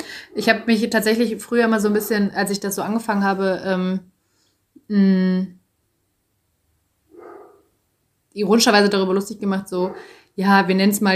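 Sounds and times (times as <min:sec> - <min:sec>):
speech: 0:00.4 - 0:04.1, 0:04.9 - 0:05.6, 0:08.4 - 0:11.1
dog bark: 0:07.1 - 0:07.7, 0:09.9 - 0:10.1.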